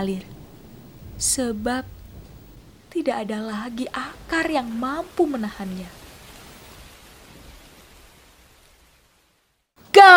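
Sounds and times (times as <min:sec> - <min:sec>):
speech: 0:00.0 - 0:00.4, 0:01.2 - 0:02.0, 0:02.9 - 0:06.0
rushing storm wind: 0:00.0 - 0:09.0
heavy storm rain roaring: 0:00.0 - 0:10.1.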